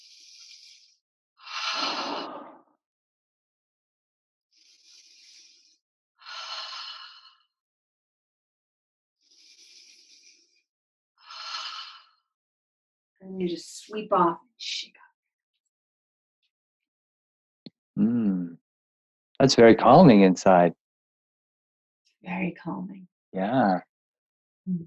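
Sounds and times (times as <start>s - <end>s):
slow deep breaths during a guided breathing exercise: 0.0s - 2.2s, 4.6s - 7.4s, 9.3s - 10.6s
speech: 13.3s - 15.0s, 18.0s - 18.6s, 19.4s - 20.8s, 22.2s - 23.9s.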